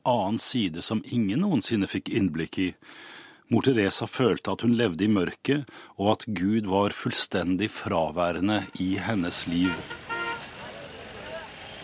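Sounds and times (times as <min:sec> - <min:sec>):
speech: 0:00.0 - 0:10.1
steady hum of busy street traffic in narrow streets: 0:08.1 - 0:11.8
short car horn toots in crowded narrow streets: 0:08.5 - 0:11.8
indistinct crowd voices: 0:10.3 - 0:11.8.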